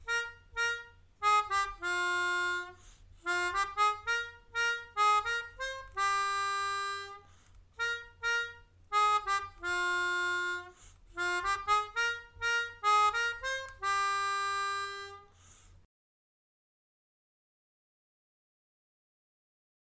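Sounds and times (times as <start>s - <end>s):
melodica: 0.0s - 15.6s.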